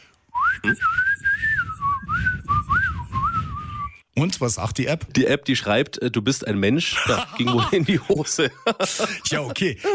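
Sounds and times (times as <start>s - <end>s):
person whistling birdlike melody into a mobile phone: 0.3s - 4.0s
speech: 0.6s - 1.5s, 4.2s - 9.9s
laughter: 7.0s - 9.9s.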